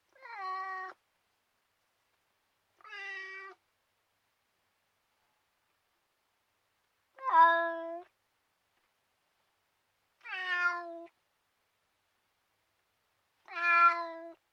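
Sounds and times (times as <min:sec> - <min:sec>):
cat meowing: 0:00.1 - 0:01.0, 0:02.8 - 0:03.6, 0:07.2 - 0:08.1, 0:10.2 - 0:11.2, 0:13.4 - 0:14.4.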